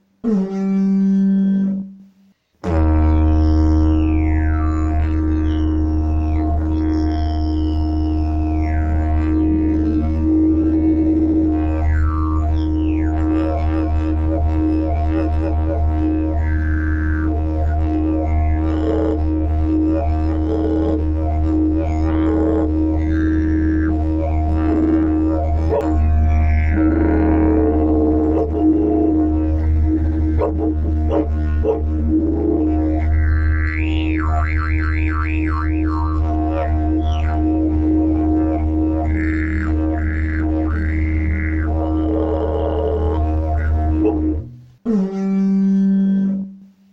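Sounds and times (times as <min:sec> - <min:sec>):
didgeridoo: 0:00.0 - 0:46.8.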